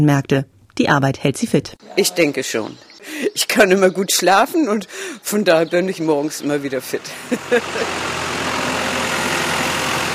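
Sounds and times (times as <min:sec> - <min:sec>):
speech: 0:00.0 - 0:08.4
engine of a red van driving into a farmyard: 0:01.8 - 0:10.1
laughter: 0:03.0 - 0:03.7, 0:06.9 - 0:08.0.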